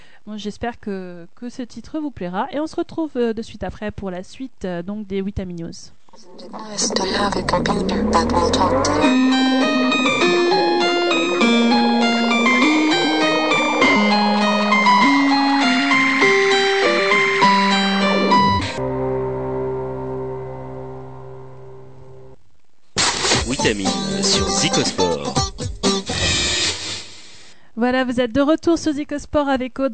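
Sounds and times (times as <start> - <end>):
speech: 0.2 - 10.6, 27.8 - 29.9
pop song played during music break: 6.6 - 18.5, 23.2 - 26.2
sudden burst of sound: 6.8 - 21.8.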